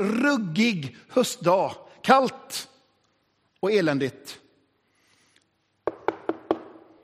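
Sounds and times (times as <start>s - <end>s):
speech: 0.0s - 2.7s, 3.6s - 4.4s
firm knocking on a wooden door: 5.8s - 6.8s.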